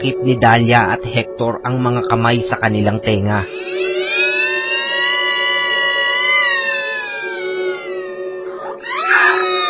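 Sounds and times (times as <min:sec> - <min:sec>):
speech: 0:00.0 - 0:03.8
child wailing shrilly at the sight of a stranger in the bedroom: 0:03.5 - 0:09.6.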